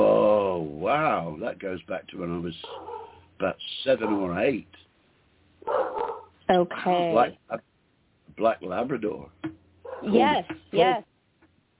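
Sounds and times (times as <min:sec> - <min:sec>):
speech: 0:00.9 - 0:04.8, 0:06.5 - 0:07.7, 0:08.3 - 0:11.1
dog barking: 0:02.6 - 0:03.2, 0:04.0 - 0:04.4, 0:05.6 - 0:06.3, 0:09.8 - 0:10.2.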